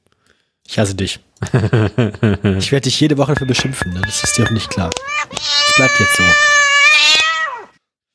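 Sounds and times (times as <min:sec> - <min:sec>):
speech: 0:00.7 - 0:07.1
laughter: 0:01.4 - 0:02.7
cat meowing: 0:04.3 - 0:07.8.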